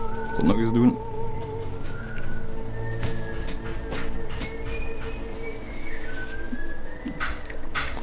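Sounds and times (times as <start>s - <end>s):
steady hum: 0.0s - 8.0s
speech: 0.4s - 1.1s
dove-like cooing whistled through cupped fingers: 1.1s - 8.0s
clattering knocks from work: 2.8s - 8.0s.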